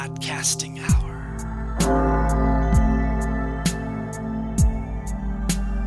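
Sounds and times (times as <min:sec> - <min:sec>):
speech: 0:00.0 - 0:01.2
deep bell tolling midnight: 0:00.8 - 0:05.5.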